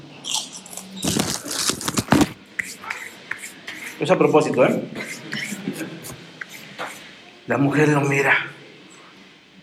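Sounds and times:
sharp bite and crunchy chewing of cookies: 0.2 - 2.4
cookies being snapped open: 0.2 - 2.7
speech: 4.0 - 5.0, 7.5 - 8.5.

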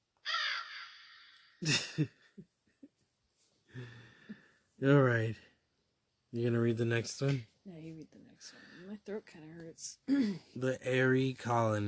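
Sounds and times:
person's voice imitating crow caws: 0.2 - 1.6
laughter: 1.6 - 2.4
speech: 1.6 - 2.5, 4.8 - 5.4, 6.3 - 11.8
faint breaths: 3.6 - 4.8, 8.4 - 9.0, 10.1 - 10.5.

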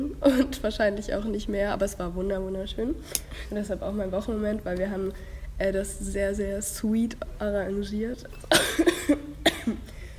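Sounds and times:
speech: 0.0 - 9.9
person coughing: 8.5 - 10.1.

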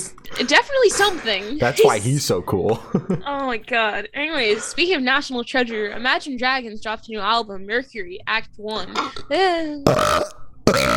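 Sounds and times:
speech: 0.4 - 10.4
loud guttural burp: 9.8 - 10.9.

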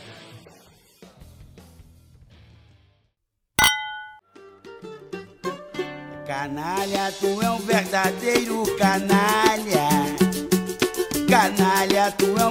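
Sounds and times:
wine glasses clinking in a toast: 3.6 - 4.2
speech: 6.3 - 10.2, 11.3 - 12.4.

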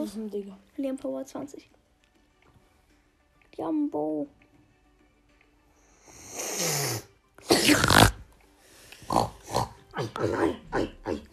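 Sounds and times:
speech: 0.0 - 1.8, 3.6 - 4.4, 10.0 - 11.3
pig grunting and snorting: 6.9 - 8.2, 9.1 - 11.3.

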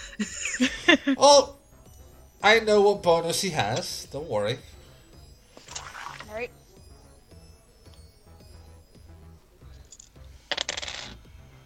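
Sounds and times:
speech: 0.2 - 1.6, 2.4 - 4.7, 6.3 - 6.6
d10 and d8 dice rattling across a hard table during a stealth roll: 10.0 - 11.2.

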